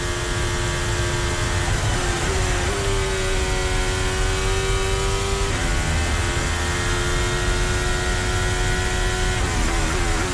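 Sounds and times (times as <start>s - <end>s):
Ferrari Formula 1 car engine heard onboard: 0.0s - 10.3s.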